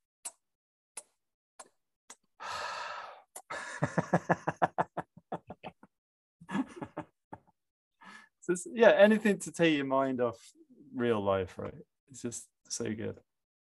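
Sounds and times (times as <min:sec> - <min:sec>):
long breathy exhale during a breathing exercise: 0:02.4 - 0:03.8
laughter: 0:03.6 - 0:05.8, 0:06.5 - 0:07.1
speech: 0:03.8 - 0:04.5, 0:08.5 - 0:13.3.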